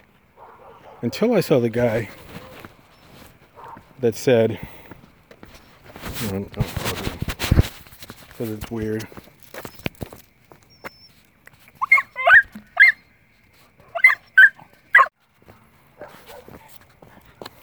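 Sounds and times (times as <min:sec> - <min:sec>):
shuffling: 0:00.0 - 0:17.6
dog barking and whimpering: 0:00.4 - 0:01.1, 0:03.5 - 0:04.0, 0:11.8 - 0:13.0, 0:13.8 - 0:15.1
speech: 0:01.0 - 0:02.3, 0:04.0 - 0:04.7, 0:06.2 - 0:07.1, 0:08.4 - 0:09.3.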